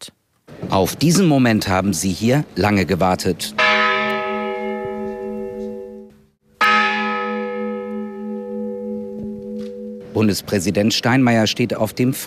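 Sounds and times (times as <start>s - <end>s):
speech: 0.6s - 3.6s, 10.2s - 12.2s
church bell ringing at a cemetery: 3.4s - 12.2s.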